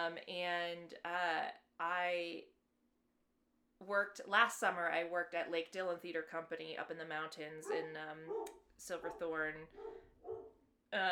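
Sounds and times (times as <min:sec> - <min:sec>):
speech: 0:00.0 - 0:02.6, 0:03.8 - 0:10.1
pet dog barking: 0:07.6 - 0:10.6.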